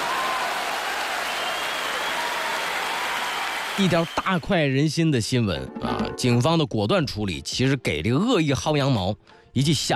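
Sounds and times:
applause: 0:00.0 - 0:04.8
speech: 0:03.8 - 0:09.9.

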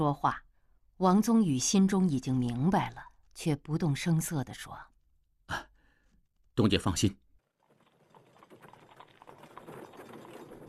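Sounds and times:
speech: 0:00.0 - 0:04.9, 0:05.5 - 0:05.7, 0:06.6 - 0:07.2
hooves of a horse-drawn carriage clip-clopping: 0:07.4 - 0:10.6.

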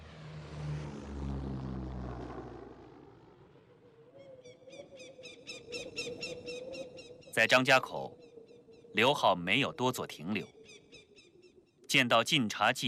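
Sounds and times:
propeller airplane flying overhead: 0:00.0 - 0:04.2
speech: 0:07.4 - 0:08.2, 0:09.0 - 0:10.6, 0:11.9 - 0:12.8.

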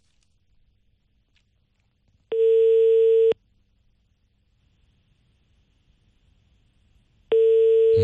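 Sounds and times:
telephone ringback tone while call connects: 0:02.3 - 0:03.4, 0:07.3 - 0:08.0.

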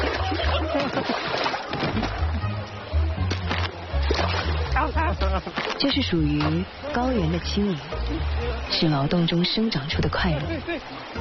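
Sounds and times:
splashing and sloshing as people wade across a river: 0:00.0 - 0:02.4, 0:03.2 - 0:06.8
speech: 0:05.3 - 0:11.1.

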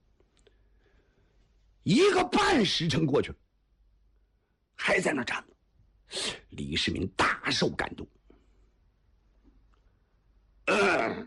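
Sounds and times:
speech: 0:01.8 - 0:03.4, 0:04.9 - 0:05.5, 0:06.1 - 0:08.2
male storyteller throat-clearing cough: 0:10.7 - 0:11.2.

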